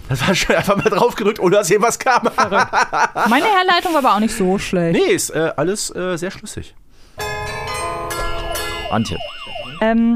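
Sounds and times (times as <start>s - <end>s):
speech: 0.1s - 6.8s, 8.9s - 10.1s
laughter: 0.3s - 1.2s, 2.0s - 3.4s
town hall carillon chimes in Munich: 7.2s - 9.6s.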